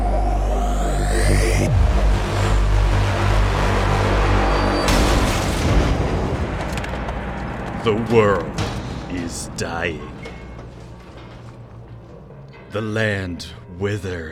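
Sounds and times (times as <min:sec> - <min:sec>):
sustained heavy rumble: 0:00.0 - 0:14.3
loud deep explosion booms: 0:01.5 - 0:11.5
speech: 0:07.9 - 0:08.6, 0:09.6 - 0:10.2, 0:12.7 - 0:14.3.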